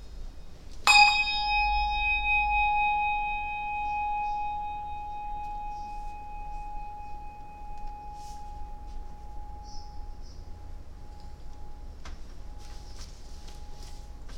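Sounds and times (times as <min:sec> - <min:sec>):
bell ringing in a worship service: 0:00.9 - 0:10.1.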